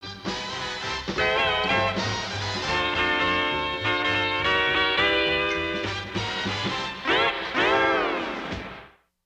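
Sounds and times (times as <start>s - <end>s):
guitar intro jingle: 1.2s - 8.4s.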